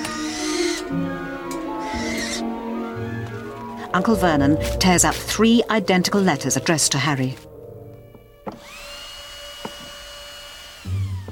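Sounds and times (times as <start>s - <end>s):
owl hooting: 0.0s - 7.4s
speech: 3.9s - 7.5s.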